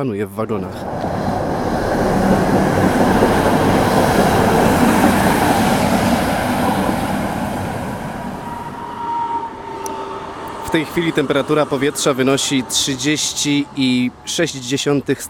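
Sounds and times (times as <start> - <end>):
speech: 0.0 - 1.8, 10.7 - 15.2
Konstal tram rolling along rails: 0.5 - 14.2
faint metallic squeal of tram slowing: 8.4 - 11.4.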